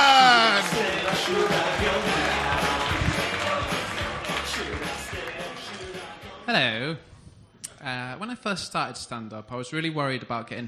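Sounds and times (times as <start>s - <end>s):
audience cheers and whoops: 0.0s - 3.4s
audience clapping: 0.0s - 6.2s
speech: 8.5s - 10.6s.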